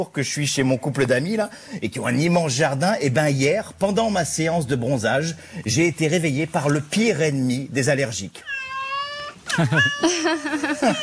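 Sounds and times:
speech: 0.0 - 8.5, 9.6 - 11.0
cat meowing: 8.4 - 10.2, 10.8 - 11.0
laughter: 9.5 - 11.0.

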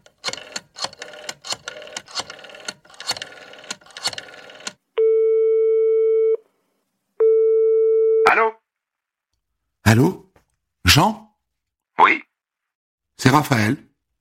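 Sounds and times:
irregular clicky dialing noises of an outgoing phone call: 0.0 - 4.8
outgoing phone call electronic ringing tone: 4.3 - 6.4, 7.2 - 8.4
speech: 9.9 - 10.2, 10.9 - 11.2, 13.3 - 13.9.

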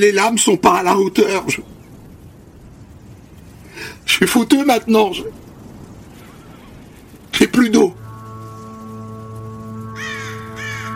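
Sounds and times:
speech: 0.0 - 1.7, 3.8 - 5.4, 7.6 - 8.0
steady low mechanical hum: 0.0 - 10.9
crow cawing while flying overhead in the morning: 9.8 - 10.9.

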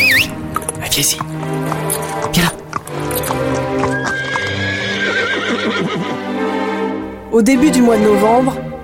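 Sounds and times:
horse hooves clip-clopping: 0.1 - 6.1
horse snorting: 0.1 - 6.2
speech: 1.0 - 2.5, 7.4 - 8.7
horse neighing: 2.4 - 6.3.

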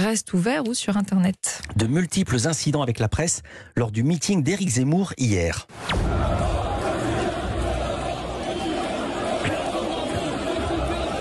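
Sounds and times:
speech: 0.0 - 6.4
large crowd chanting a slogan at a political rally: 5.8 - 11.1
indistinct shouting: 5.9 - 11.1.

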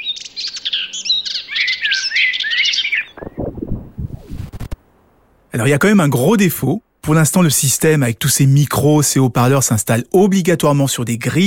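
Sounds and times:
small birds chirping and twittering: 0.0 - 4.4
broadband rustling bursts: 3.2 - 4.8
speech: 5.6 - 11.4.

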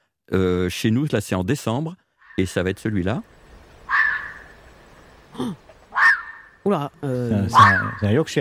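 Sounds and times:
speech: 0.3 - 3.4, 5.4 - 5.6, 6.6 - 8.3
red fox yelp: 2.2 - 2.5, 3.8 - 4.6, 5.9 - 6.6, 7.4 - 8.2
red fox mating call screams in December: 3.9 - 4.6, 5.9 - 6.6, 7.4 - 8.2.

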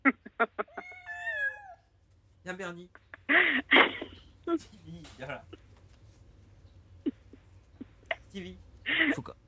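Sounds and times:
cat meowing with chirping mews and a wavering meow: 0.7 - 1.8
speech: 2.5 - 5.6, 8.4 - 9.4.

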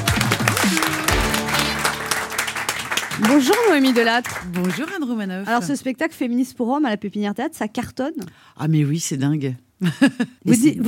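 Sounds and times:
music or tonal sounds: 0.0 - 4.8
audience applause: 0.0 - 5.1
speech: 3.3 - 10.8.

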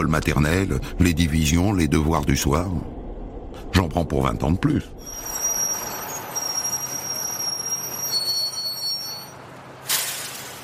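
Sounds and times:
speech: 0.0 - 2.9, 3.7 - 5.2
steady rumble of trains at a crowded Paris railway station platform: 0.0 - 10.6
thin high train wheel squeals: 5.0 - 9.4.

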